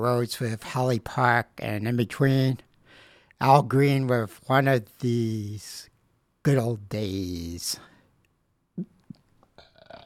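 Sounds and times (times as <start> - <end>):
speech: 0.0 - 2.7, 3.4 - 7.9
gulping: 8.8 - 10.0
short low burp: 9.6 - 10.0.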